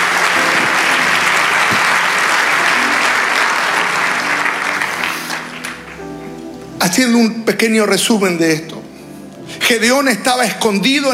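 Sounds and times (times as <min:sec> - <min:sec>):
crowd applauding during a sermon: 0:00.0 - 0:07.2
speech: 0:06.9 - 0:08.8, 0:09.7 - 0:11.1.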